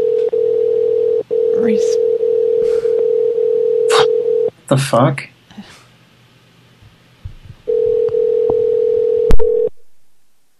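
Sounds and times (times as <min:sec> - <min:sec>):
telephone ringback tone on an outgoing call: 0:00.0 - 0:04.5, 0:07.7 - 0:09.7
speech: 0:01.6 - 0:02.1, 0:04.7 - 0:05.3.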